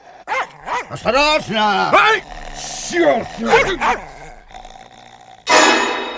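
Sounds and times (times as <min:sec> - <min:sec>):
dog growling and barking at a stranger: 0:00.0 - 0:06.1
speech: 0:00.9 - 0:04.1.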